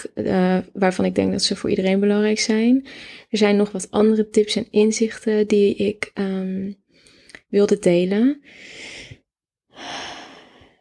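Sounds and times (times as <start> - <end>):
speech: 0.1 - 6.8, 7.5 - 9.2
deep breath: 2.9 - 3.3, 8.4 - 10.7.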